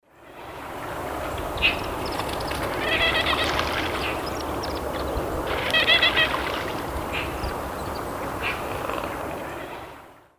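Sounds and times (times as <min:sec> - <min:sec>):
Tachybaptus dominicus calling in the Eastern Lowlands of South America: 0:01.6 - 0:04.8, 0:05.4 - 0:09.7.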